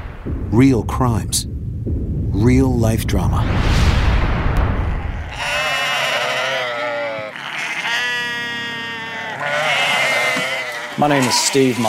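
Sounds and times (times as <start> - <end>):
low rumbling noise: 0.0 - 6.7
speech: 0.2 - 3.7, 11.0 - 11.8
sheep bleating on a small farm: 5.3 - 11.8.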